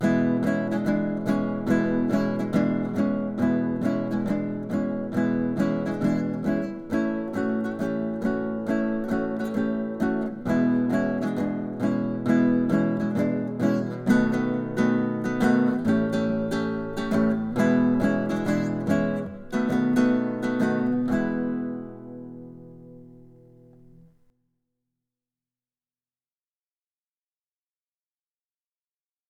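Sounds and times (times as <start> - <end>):
raunchy blues music: 0.0 - 24.1.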